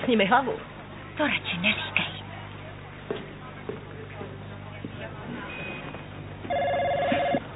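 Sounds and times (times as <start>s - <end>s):
speech: 0.1s - 2.1s
telephone ringing in a bright electronic burst: 6.5s - 7.4s.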